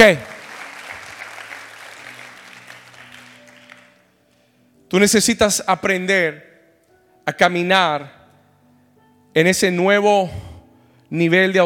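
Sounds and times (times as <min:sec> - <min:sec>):
speech: 0:00.0 - 0:00.3, 0:04.9 - 0:06.5, 0:07.2 - 0:08.2, 0:09.3 - 0:10.5, 0:11.1 - 0:11.6
audience applauding: 0:00.0 - 0:04.0.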